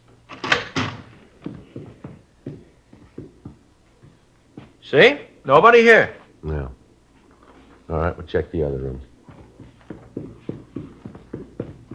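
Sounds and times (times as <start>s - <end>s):
dining room door being opened: 0.3s - 1.2s
speech: 4.9s - 6.2s, 8.0s - 9.1s.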